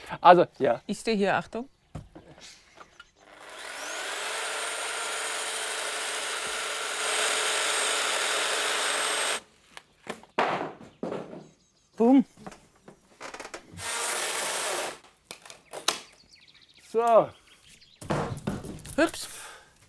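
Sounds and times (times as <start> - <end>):
speech: 0.1 - 1.8, 17.0 - 17.4, 19.0 - 19.4
power saw cutting through a wooden panel to make a window opening: 3.2 - 9.4, 13.8 - 15.0
clunks and knocks: 10.1 - 11.6, 18.0 - 19.0.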